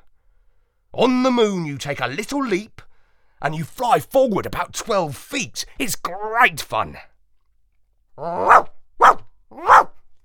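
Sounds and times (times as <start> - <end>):
speech: 1.0 - 7.1, 8.2 - 9.9
dog barking: 8.2 - 10.0.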